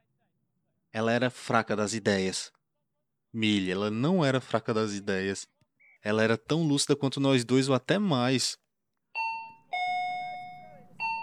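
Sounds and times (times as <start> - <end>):
speech: 1.0 - 2.6, 3.3 - 8.6
ding-dong doorbell chiming: 9.2 - 11.2.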